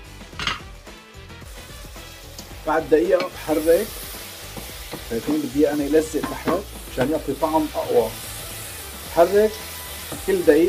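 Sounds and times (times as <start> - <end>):
pan hissing: 1.3 - 10.6
speech: 2.6 - 4.0, 5.1 - 8.2, 9.2 - 10.6.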